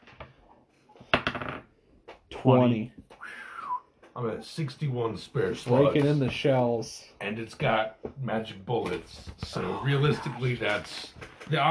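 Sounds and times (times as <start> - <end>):
twenty-sided die rolling across a table: 1.1 - 1.7
speech: 2.4 - 3.0, 4.2 - 11.6.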